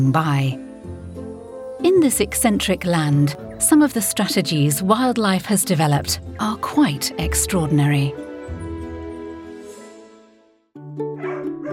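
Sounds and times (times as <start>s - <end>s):
speech: 0.0s - 0.6s, 1.8s - 8.3s
dog barking: 11.2s - 11.7s.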